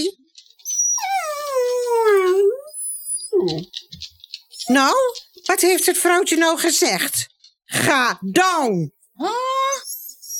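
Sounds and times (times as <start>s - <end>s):
dog howling: 0.6s - 3.7s
speech: 4.7s - 9.6s.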